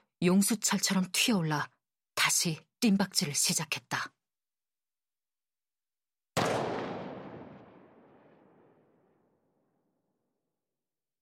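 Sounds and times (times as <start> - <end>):
speech: 0.2 - 4.2
gunshot echoing across open ground: 6.4 - 9.3.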